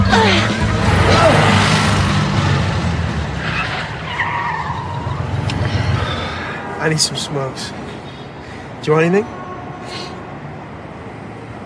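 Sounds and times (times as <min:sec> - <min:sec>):
Porsche car tires squealing and skidding: 0:00.0 - 0:08.4
speech: 0:06.8 - 0:07.8, 0:08.8 - 0:09.4.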